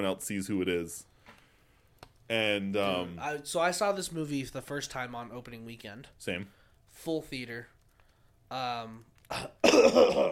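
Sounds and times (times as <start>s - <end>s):
speech: 0.0s - 1.1s, 2.3s - 7.7s, 8.5s - 10.3s
person clearing throat: 9.3s - 10.3s.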